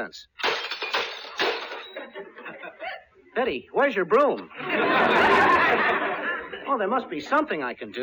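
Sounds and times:
speech: 0.0s - 0.3s, 3.4s - 8.0s
juggled dishes crashing and shattering: 0.3s - 2.3s
broken dish pieces clinking and rattling as they settle: 0.4s - 2.1s
laughter: 2.0s - 3.2s, 4.5s - 6.9s.

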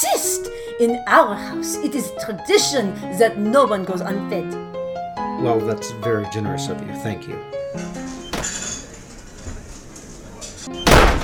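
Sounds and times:
speech: 0.2s - 4.8s, 5.4s - 8.6s
back door banging open: 7.8s - 11.2s
faint kitchen clatter of dishes: 7.8s - 11.2s.

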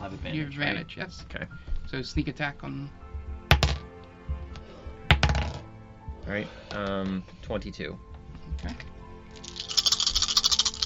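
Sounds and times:
speech: 0.2s - 3.0s, 6.3s - 9.5s
many dice rattling and tumbling across a table: 3.5s - 3.8s, 5.1s - 5.6s, 9.4s - 10.8s.

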